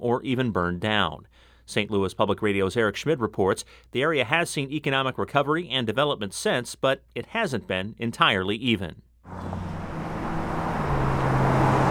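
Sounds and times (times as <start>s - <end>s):
speech: 0.0s - 9.7s
steady stream of cars passing on avenue: 9.3s - 11.8s.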